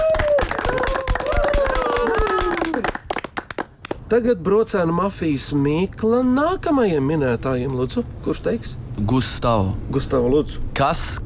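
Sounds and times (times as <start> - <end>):
small group clapping: 0.0 - 4.1
speech: 4.1 - 11.2.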